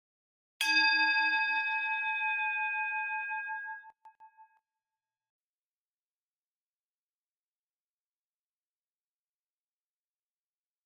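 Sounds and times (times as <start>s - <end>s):
meditation bell ringing: 0.6s - 3.8s.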